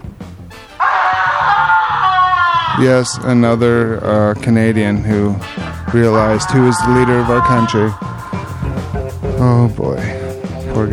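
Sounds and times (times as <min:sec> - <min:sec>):
man screaming: 0:00.8 - 0:04.1, 0:05.4 - 0:09.6
speech: 0:02.8 - 0:08.2, 0:09.4 - 0:10.2, 0:10.8 - 0:10.9.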